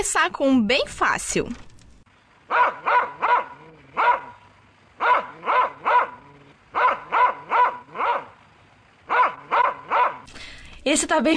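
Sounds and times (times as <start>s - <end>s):
speech: 0.0s - 1.7s, 2.5s - 3.4s, 10.8s - 11.3s
small dog barking sharp yaps: 2.5s - 8.4s, 9.1s - 10.3s.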